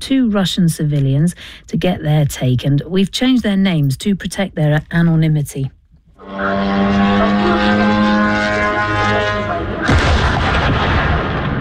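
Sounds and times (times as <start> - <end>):
speech: 0.1 - 7.0
Ukrainian drone engine buzzing: 6.1 - 10.6
rough rumble of blast noise: 6.6 - 11.6
heavy explosion of drone crashing into a warehouse: 9.5 - 11.6.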